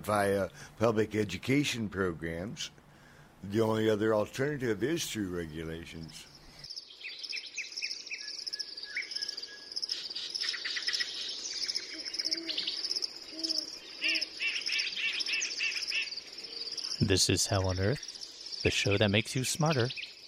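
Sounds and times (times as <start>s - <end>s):
speech: 0.0s - 2.8s, 3.4s - 6.3s, 17.0s - 20.0s
birds chirping and trilling: 4.9s - 20.2s
steady hum of insects: 5.0s - 20.2s
soft low cooing calls: 10.9s - 18.0s.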